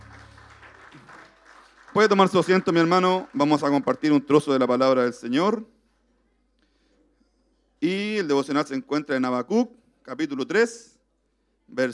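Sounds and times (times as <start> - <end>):
audience applause: 0.0 - 4.5
speech: 2.0 - 5.8, 7.8 - 10.9, 11.7 - 11.9.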